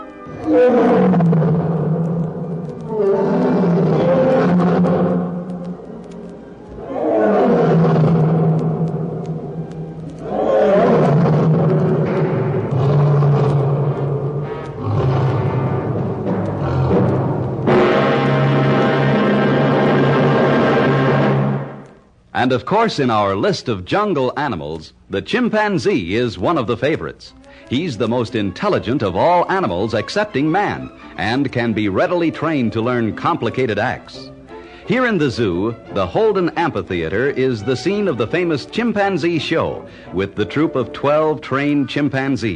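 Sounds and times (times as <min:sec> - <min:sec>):
speech: 0:00.3 - 0:01.7, 0:22.4 - 0:34.3, 0:34.9 - 0:42.5
African lion roaring: 0:00.3 - 0:01.9, 0:02.9 - 0:05.4, 0:06.8 - 0:08.6, 0:10.2 - 0:21.6.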